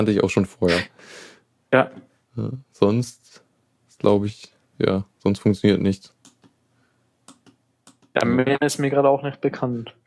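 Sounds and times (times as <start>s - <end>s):
speech: 0.0s - 3.4s, 4.0s - 6.2s, 8.2s - 10.0s
middle mouse button clicks: 7.2s - 8.2s.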